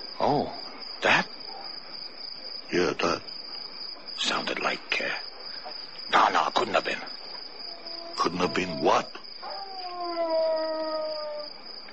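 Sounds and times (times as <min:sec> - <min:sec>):
speech: 0:00.2 - 0:01.2, 0:02.8 - 0:03.3, 0:04.3 - 0:05.3, 0:06.1 - 0:07.2, 0:08.2 - 0:09.2
wolf howling in cold weather: 0:07.7 - 0:11.6.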